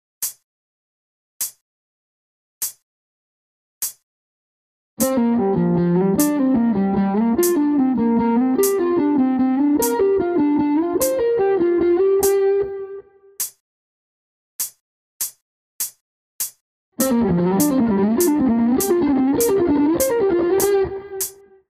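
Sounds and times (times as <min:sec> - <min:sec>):
pentatonic slide melody: 0:05.0 - 0:13.0, 0:17.0 - 0:21.4.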